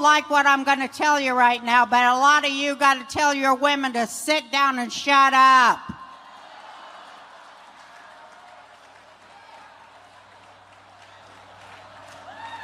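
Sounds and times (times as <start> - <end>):
speech: 0.0 - 5.9
crowd applauding: 6.0 - 12.6.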